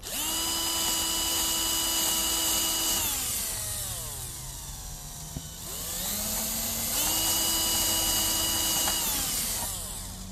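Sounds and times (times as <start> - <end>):
power drill boring a shallow hole into a wooden board: 0.0 - 10.2.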